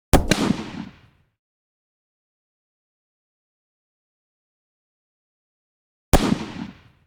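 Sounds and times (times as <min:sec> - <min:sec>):
.223 rifle blasts close: 0:00.2 - 0:01.1, 0:06.2 - 0:06.9.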